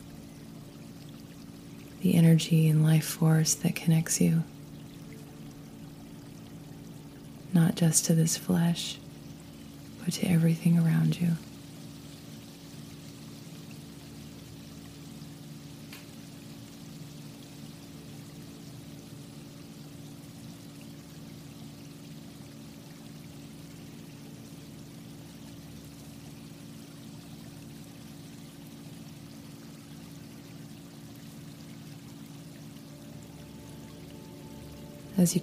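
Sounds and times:
stream of flowing water babbling and rushing: 0.0 - 35.4
speech: 2.0 - 4.6, 7.6 - 9.0, 10.1 - 11.5, 35.2 - 35.4.

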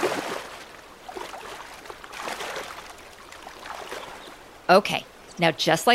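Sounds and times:
river water flowing: 0.0 - 5.9
speech: 4.7 - 5.9.

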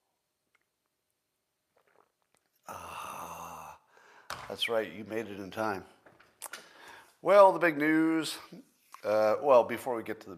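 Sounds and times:
person slurping a sip of coffee: 1.6 - 3.9
breathy burst: 2.6 - 4.4
speech: 4.5 - 6.0, 7.2 - 10.3.

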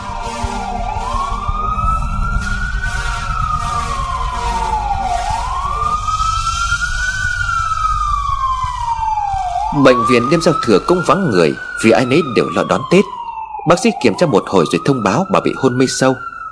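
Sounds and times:
emergency vehicle engine and road rumble while speeding: 0.0 - 12.2
emergency vehicle siren wailing on New Year's Eve night: 0.0 - 16.5
speech: 9.8 - 16.3.

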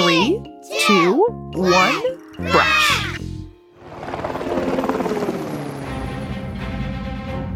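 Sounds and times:
speech: 0.9 - 2.7
aircraft engine roaring before takeoff: 3.8 - 7.5.

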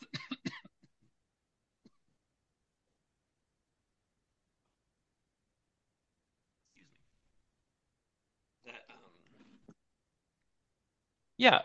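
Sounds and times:
person clearing throat: 0.0 - 0.8
person coughing: 0.0 - 0.8
speech: 11.4 - 11.6.

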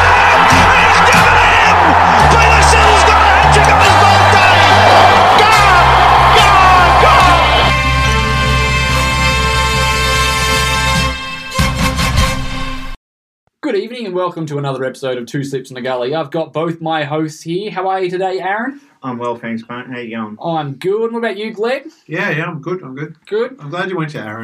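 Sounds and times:
large crowd roaring and cheering: 0.0 - 11.1
steady musical backing: 0.0 - 13.0
speech: 14.2 - 24.4.

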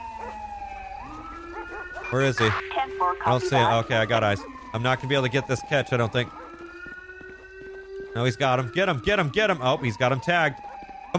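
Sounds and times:
siren wailing: 0.0 - 11.1
police dog barking during chase of a fleeing suspect: 0.2 - 0.4, 1.5 - 2.1, 6.3 - 6.6
speech: 2.1 - 6.4, 8.2 - 11.1.

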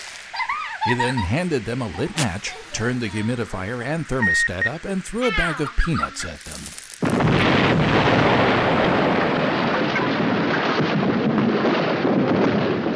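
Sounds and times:
laughter: 0.3 - 3.4, 5.2 - 6.6
speech: 0.8 - 6.8
massive explosions roaring: 6.4 - 12.9.

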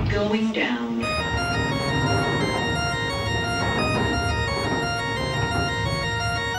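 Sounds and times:
speech: 0.2 - 0.9
elevator door sliding shut: 1.1 - 6.5.

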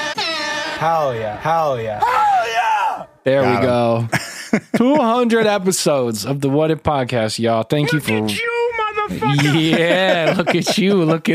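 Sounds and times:
air horn sound effect made of meowing cat cries: 0.0 - 2.6
speech: 0.8 - 2.2, 3.2 - 8.5, 9.1 - 11.3
laughter: 3.4 - 5.7, 8.1 - 11.3.

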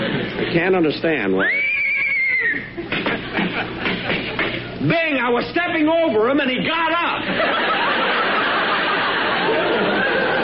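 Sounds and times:
laughter: 0.0 - 0.7, 2.0 - 4.8, 7.2 - 10.4
speech: 0.5 - 1.6, 4.8 - 7.9
horse whinnying: 1.4 - 2.8.

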